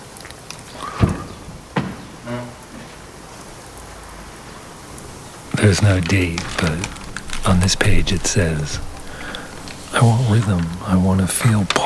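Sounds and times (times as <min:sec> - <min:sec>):
faint rain patter: 0:00.0 - 0:11.8
raindrops falling into a plastic bucket: 0:05.4 - 0:11.8
speech: 0:05.6 - 0:08.9, 0:10.0 - 0:11.8.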